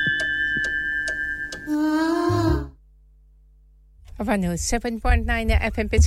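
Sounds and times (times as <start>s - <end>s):
studio clock ticking: 0.0s - 1.7s
speech: 4.2s - 6.0s.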